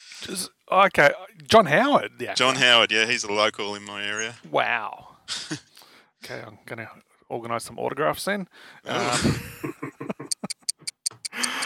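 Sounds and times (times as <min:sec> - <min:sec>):
speech: 0:00.2 - 0:05.6, 0:06.2 - 0:09.9
laughter: 0:09.0 - 0:10.7
clock ticking: 0:10.0 - 0:11.6.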